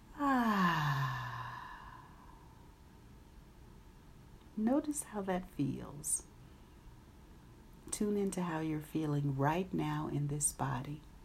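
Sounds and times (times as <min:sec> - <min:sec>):
long voiced sighing exhale during a guided breathing exercise: 0:00.2 - 0:02.6
speech: 0:04.6 - 0:06.3, 0:08.0 - 0:11.1.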